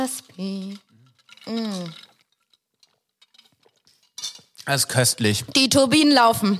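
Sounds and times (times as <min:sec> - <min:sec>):
speech: 0:00.0 - 0:00.9, 0:01.5 - 0:02.0, 0:04.7 - 0:06.5
ice cubes clinking against a glass: 0:00.0 - 0:04.5.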